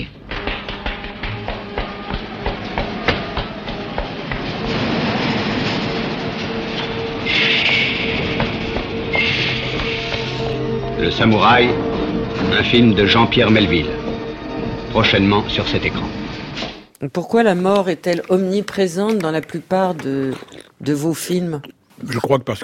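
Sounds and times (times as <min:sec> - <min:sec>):
subway train rattling along: 0:00.0 - 0:16.6
shrill metallic squeals of a subway train: 0:01.1 - 0:16.9
speech: 0:11.1 - 0:14.0, 0:14.9 - 0:16.2, 0:17.0 - 0:22.6.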